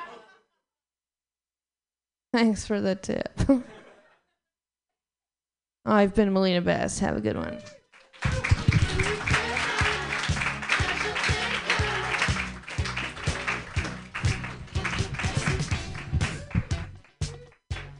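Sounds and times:
speech: 0:02.3 - 0:03.8, 0:05.8 - 0:08.5
live audience applause after comedy set: 0:08.0 - 0:17.2
audience whoops: 0:08.2 - 0:14.3.

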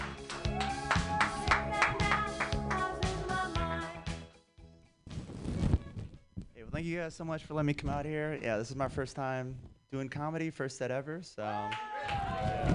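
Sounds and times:
crowd applause from an audience: 0:00.0 - 0:02.7
upbeat walk-on music: 0:00.0 - 0:06.6
speech: 0:06.8 - 0:12.7.

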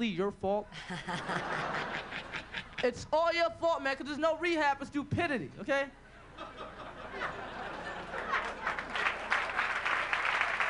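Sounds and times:
speech: 0:00.0 - 0:07.3
laughter: 0:00.7 - 0:02.9, 0:06.2 - 0:09.8
comedy club audience applause: 0:07.8 - 0:10.6.

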